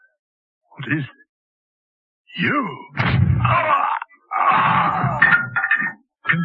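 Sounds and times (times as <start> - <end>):
speech: 0.8 - 1.2, 2.3 - 3.9
man gasping and groaning in pain after being shot: 3.4 - 5.4.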